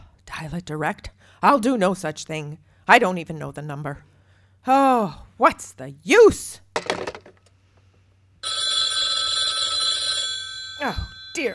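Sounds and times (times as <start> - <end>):
speech: 0.4 - 7.1, 10.8 - 11.5
telephone bell ringing: 8.4 - 11.5.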